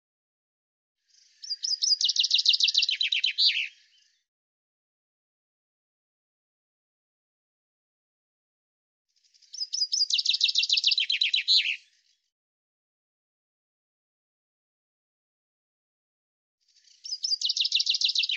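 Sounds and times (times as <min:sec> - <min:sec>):
Common chaffinch song: 0:01.0 - 0:04.3, 0:09.2 - 0:12.2, 0:16.7 - 0:18.3.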